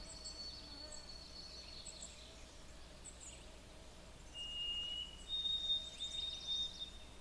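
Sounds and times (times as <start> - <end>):
white-throated sparrow on a power wire singing abbreviated song: 0.0 - 2.4, 4.3 - 7.2
faint insect hum: 0.0 - 7.2.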